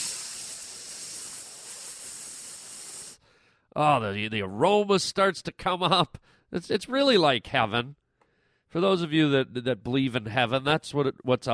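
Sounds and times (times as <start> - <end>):
burger patty sizzling on a hot grill: 0.0 - 3.2
speech: 3.7 - 8.0, 8.7 - 11.5.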